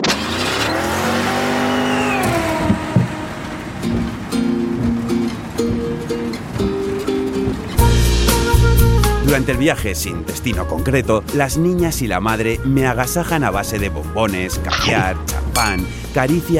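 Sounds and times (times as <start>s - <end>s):
car engine revving and shifting through gears: 0.0s - 8.6s
car tires squealing: 0.0s - 9.4s
speech: 9.4s - 16.5s.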